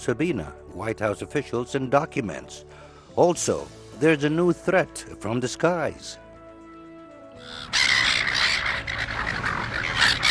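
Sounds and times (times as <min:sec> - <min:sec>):
speech: 0:00.0 - 0:06.2, 0:07.4 - 0:08.0
flock of seagulls squawking and crying in Australia: 0:07.4 - 0:10.2.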